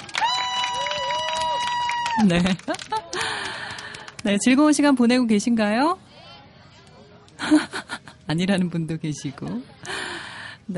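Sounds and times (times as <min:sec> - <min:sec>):
large outdoor audience applauding loudly: 0:00.0 - 0:04.3
laughter: 0:02.1 - 0:03.9, 0:07.4 - 0:08.2
speech: 0:02.2 - 0:06.0, 0:07.5 - 0:10.0.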